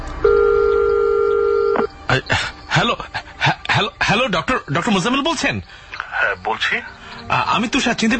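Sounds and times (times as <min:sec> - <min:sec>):
landline telephone keypad beeps: 0:00.3 - 0:01.9
landline telephone two-tone line signal: 0:00.3 - 0:01.9
speech: 0:02.1 - 0:08.1.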